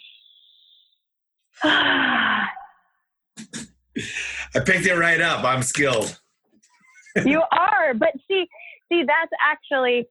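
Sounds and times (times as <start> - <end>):
speech: 1.6 - 2.1, 4.0 - 6.2, 7.2 - 10.0
deep breath in through the nose and out through the mouth: 4.0 - 4.6.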